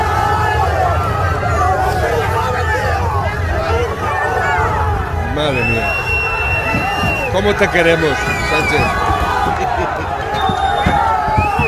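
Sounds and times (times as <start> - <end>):
loud dense crowd roar: 0.0 - 11.6
people shouting: 0.0 - 11.6
laughter: 0.9 - 11.6
thumps of people kicking a car: 6.6 - 11.6
speech: 7.4 - 9.0.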